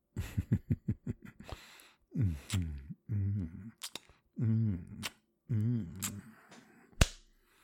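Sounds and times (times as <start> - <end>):
drawn-out wordless vocal sounds: 1.4 - 7.0
light rhythmic slaps on skin: 7.0 - 7.3.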